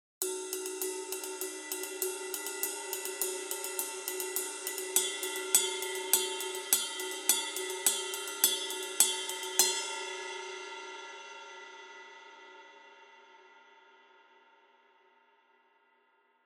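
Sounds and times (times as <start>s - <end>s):
heavy 20 inch ride cymbal: 0.2s - 12.4s.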